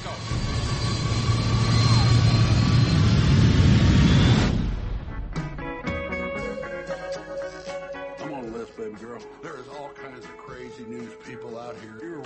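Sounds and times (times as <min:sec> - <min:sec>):
airplane engine drone: 0:00.0 - 0:05.2
airplane in flight at 30,000 feet rolling over: 0:00.0 - 0:10.4.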